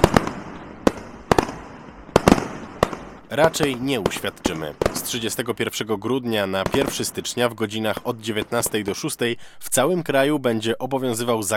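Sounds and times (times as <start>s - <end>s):
crackling firecracker pops: 0.0s - 5.2s
New Year's Eve fireworks bangs: 0.0s - 9.4s
speech: 3.3s - 11.5s.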